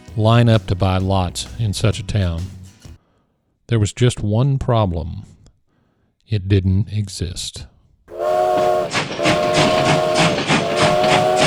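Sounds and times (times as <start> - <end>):
speech: 0.2 - 2.6, 3.7 - 5.4, 6.3 - 7.7
steam train whistle: 8.1 - 11.4.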